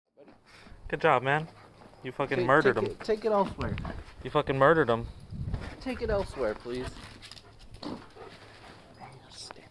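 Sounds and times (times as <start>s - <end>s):
speech: 0.9s - 7.2s, 7.8s - 8.1s
dog panting and whimpering: 6.2s - 9.0s.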